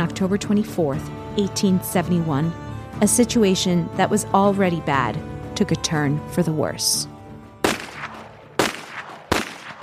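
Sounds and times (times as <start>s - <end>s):
speech: 0.0s - 7.1s
gunshots: 7.6s - 9.8s.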